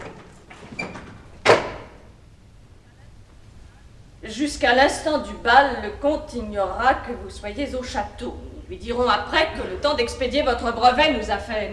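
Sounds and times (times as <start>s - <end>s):
door in a château shut with a sharp loud thud during a stage performance: 0.0s - 2.1s
soft shuffling during a stage performance: 2.5s - 4.2s
speech: 4.3s - 11.7s.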